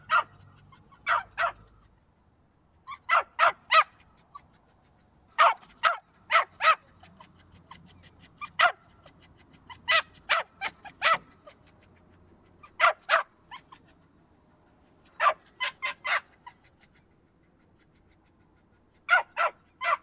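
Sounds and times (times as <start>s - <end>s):
small dog barking: 0.0s - 1.7s, 2.9s - 4.0s, 5.4s - 7.2s, 8.4s - 8.8s, 9.8s - 11.3s, 12.6s - 13.7s, 15.1s - 16.3s, 19.1s - 20.0s.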